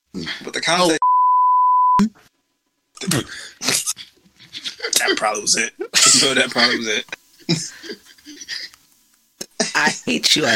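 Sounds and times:
speech: 0.2s - 1.0s, 5.2s - 7.9s, 9.8s - 10.5s
censor bleep tone: 1.0s - 2.1s
laughter: 3.6s - 8.8s.

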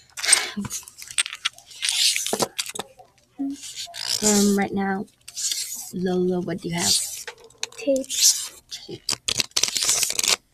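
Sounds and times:
adhesive tape tearing: 0.2s - 2.9s, 3.6s - 4.6s, 5.3s - 5.9s, 6.8s - 10.4s
speech: 0.6s - 0.9s, 3.4s - 5.2s, 5.9s - 7.0s, 7.8s - 9.1s.

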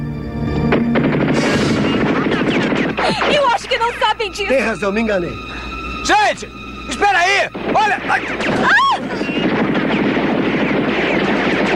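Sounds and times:
soldiers firing rapid gunfire on zombies in a subway: 0.7s - 3.7s, 7.6s - 11.7s
speech: 3.9s - 9.4s.

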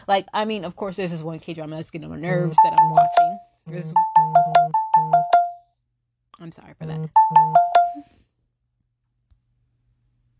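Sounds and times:
speech: 0.0s - 5.3s, 6.4s - 8.2s
phone notification alert with bright electronic tone: 2.4s - 5.6s, 7.0s - 8.1s.

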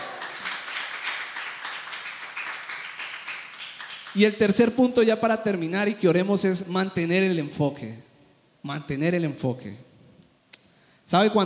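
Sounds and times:
crowd applauding: 0.0s - 4.3s
speech: 4.2s - 9.9s, 11.1s - 11.4s.

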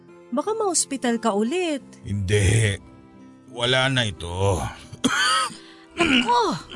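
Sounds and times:
speech: 0.3s - 2.9s, 3.5s - 6.7s
man clearing throat in a rough strained rasp: 4.9s - 6.7s
man coughing: 4.9s - 6.7s.

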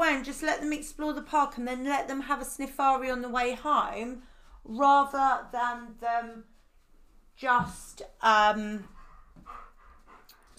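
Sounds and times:
speech: 0.1s - 6.5s, 7.4s - 8.9s
dog panting: 8.8s - 10.5s.

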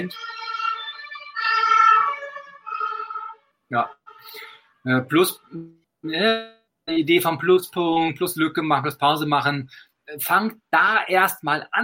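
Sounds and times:
speech: 0.0s - 0.4s, 3.7s - 11.8s
ambulance siren wailing: 0.0s - 4.6s.

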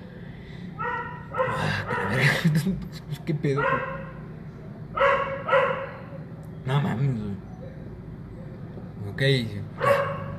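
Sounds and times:
steady low hum: 0.0s - 10.3s
sharp dog barks: 0.8s - 2.4s, 3.6s - 4.3s, 5.0s - 6.2s, 9.8s - 10.3s
speech: 1.8s - 4.0s, 9.2s - 9.9s
laughter: 2.1s - 3.2s.

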